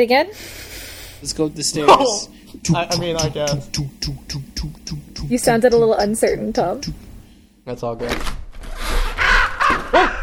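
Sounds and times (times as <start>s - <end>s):
speech: 0.0s - 7.1s, 7.7s - 8.4s
raven cawing as it flies past: 9.1s - 9.9s.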